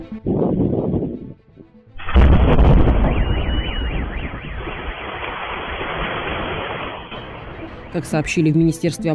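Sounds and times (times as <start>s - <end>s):
massive aerial bomb explosion: 2.0s - 7.7s
car alarm wailing: 2.7s - 8.2s
speech: 7.9s - 9.1s.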